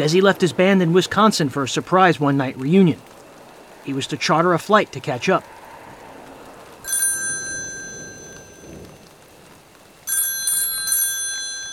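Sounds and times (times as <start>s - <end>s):
speech: 0.0s - 3.2s, 3.9s - 5.6s
steady patter of rain: 0.0s - 11.7s
old-fashioned telephone bell ringing: 6.9s - 8.9s, 10.1s - 11.7s.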